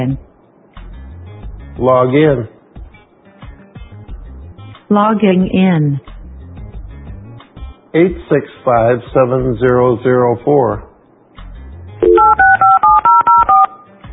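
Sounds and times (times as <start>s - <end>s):
speech: 0.0s - 0.3s, 1.8s - 2.6s, 4.9s - 6.1s, 7.9s - 10.9s
crisp touch-tone dialing beeps over internet call: 12.0s - 13.9s.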